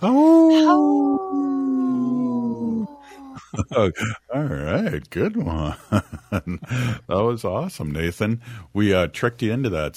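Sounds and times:
speech: 0.0 - 0.3, 3.6 - 9.9
person imitating a wolf howl: 0.0 - 3.5.

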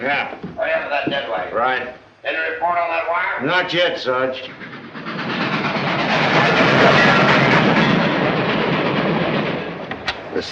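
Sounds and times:
speech: 0.0 - 0.5, 1.1 - 4.7
train running on rails: 3.4 - 10.5.

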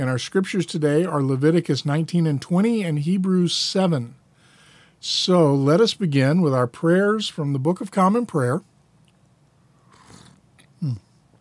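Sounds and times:
speech: 0.0 - 4.2, 5.0 - 8.7, 10.8 - 11.0
slurping sip of coffee: 9.8 - 10.8
loud gulp or swallow of coffee: 9.9 - 11.2.

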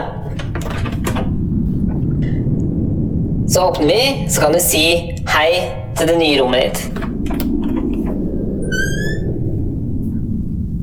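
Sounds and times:
prison inmate's room door being pushed shut: 0.0 - 2.4, 6.8 - 9.4
steady low rumble: 0.0 - 10.8
speech: 3.5 - 7.1.

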